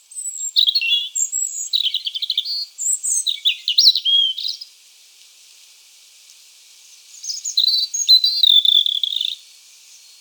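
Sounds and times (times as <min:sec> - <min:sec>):
European robin singing: 0:00.0 - 0:04.7, 0:07.1 - 0:10.1.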